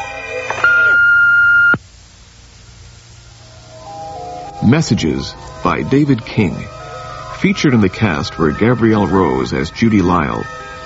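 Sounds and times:
sustained pure-pitched electronic beep: 0.6 - 1.8
faint hiss: 1.7 - 10.8
speech: 4.7 - 6.8, 7.4 - 10.7.

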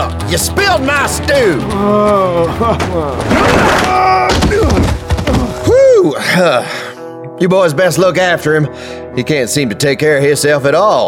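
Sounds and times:
speech: 0.3 - 6.8, 7.4 - 11.0
head slammed down onto a wooden table: 2.8 - 5.7.

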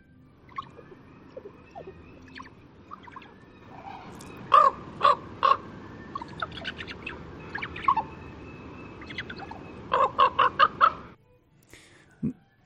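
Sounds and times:
raven gabbling with croaks, clicks and throaty calls: 0.5 - 8.2, 8.9 - 11.2.

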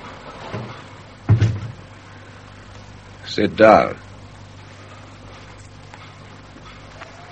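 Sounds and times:
door shutting with a dull low thud: 0.5 - 1.8
speech: 3.3 - 4.1.

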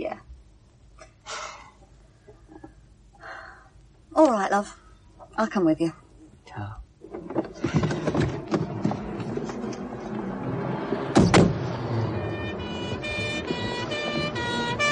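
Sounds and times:
speech: 4.2 - 4.8, 5.4 - 6.0
police car engine rumbling: 6.2 - 14.9
clattering street noise: 7.0 - 14.9
high siren-like tones: 11.7 - 14.9.

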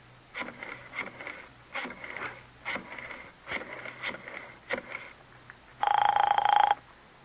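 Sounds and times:
steady telephone buzzing tone: 5.8 - 6.8
telephone ringing: 5.8 - 6.8.

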